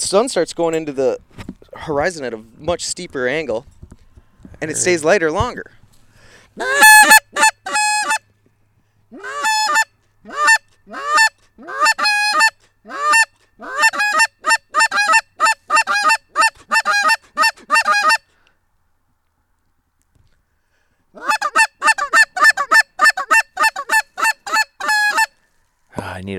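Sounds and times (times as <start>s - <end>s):
speech: 0.0s - 3.8s, 4.6s - 5.8s, 6.6s - 7.4s
line of geese honking in flight: 6.6s - 8.2s, 9.2s - 18.2s, 21.2s - 25.3s.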